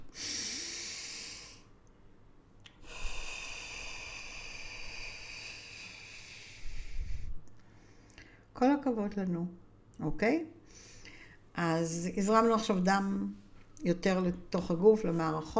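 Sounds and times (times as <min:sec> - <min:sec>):
deep breath in and out: 0:00.1 - 0:01.7, 0:02.8 - 0:08.5, 0:10.6 - 0:11.5
speech: 0:08.6 - 0:10.8, 0:11.6 - 0:15.5.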